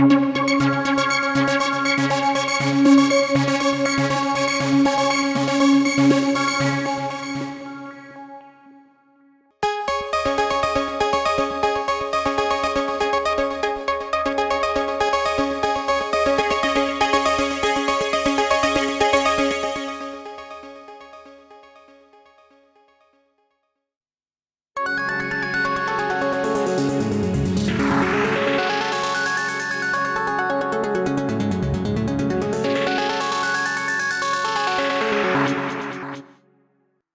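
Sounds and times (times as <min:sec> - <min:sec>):
arpeggio: 0:00.2 - 0:08.7, 0:09.7 - 0:21.8, 0:24.8 - 0:36.3.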